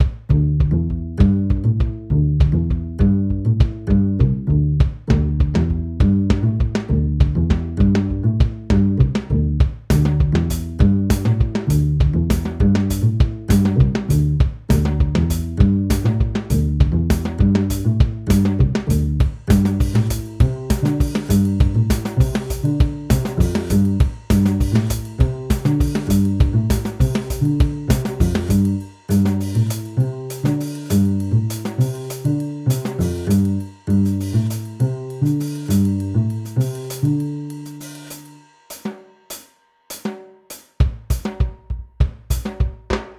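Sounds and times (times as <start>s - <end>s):
bass: 0.0s - 38.5s
drums: 0.0s - 43.1s.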